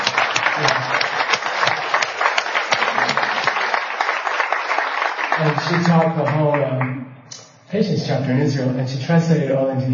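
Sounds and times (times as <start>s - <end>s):
room full of people clapping: 0.0s - 6.9s
speech: 5.4s - 7.0s, 7.7s - 9.9s.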